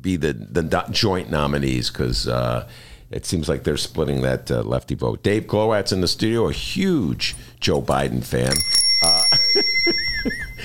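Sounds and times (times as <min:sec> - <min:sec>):
speech: 0:00.0 - 0:08.8, 0:09.8 - 0:10.5
small hand bell ringing in a studio: 0:08.4 - 0:10.6.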